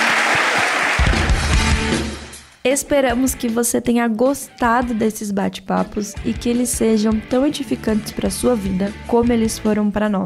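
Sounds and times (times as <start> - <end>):
loud applause for pastors at a church talk: 0.0 - 2.2
speech: 2.6 - 10.2.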